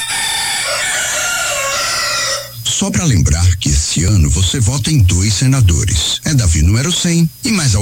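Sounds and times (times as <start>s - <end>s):
two roosters crowing: 0.0s - 2.6s
speech: 2.8s - 7.8s.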